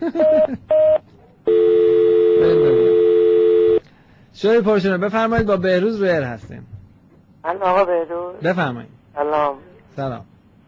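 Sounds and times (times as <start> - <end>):
speech: 0.0 - 1.0, 4.4 - 6.8, 7.4 - 10.3
two short beeping telephone tones as a caller is put on hold: 0.7 - 3.8.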